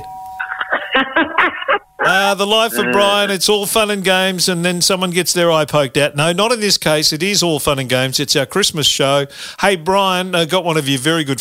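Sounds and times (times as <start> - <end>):
telephone-style doorbell ringing with a warbling electronic melody: 0.0 - 0.7
laughter: 0.4 - 3.4
speech: 2.1 - 11.4.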